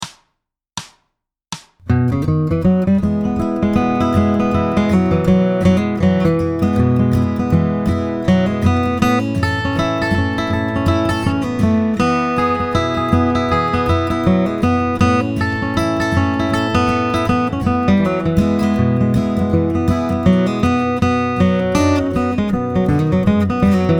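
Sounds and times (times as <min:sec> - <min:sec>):
bluegrass guitar playing with some cross-picking: 0:01.9 - 0:23.9.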